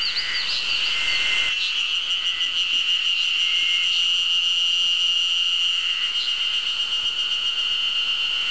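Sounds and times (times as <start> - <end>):
inca cicada calling: 0.0 - 8.4.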